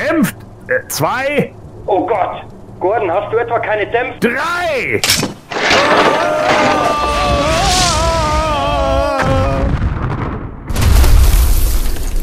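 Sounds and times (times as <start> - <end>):
speech: 0.1 - 7.4
craft smashing apart into pieces with rumbling crash: 5.5 - 12.2.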